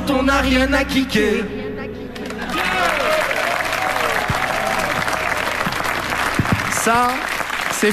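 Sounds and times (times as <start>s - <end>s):
speech: 0.1s - 1.6s, 6.9s - 7.9s
crowd applauding: 2.2s - 7.9s.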